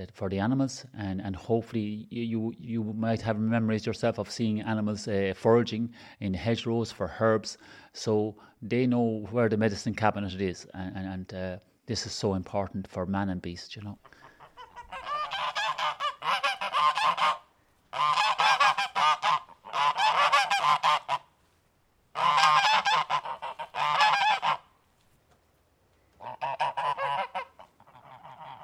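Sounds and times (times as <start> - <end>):
speech: 0.0 - 14.1
geese on a farm honking: 14.0 - 21.4, 22.1 - 24.8, 26.1 - 28.6.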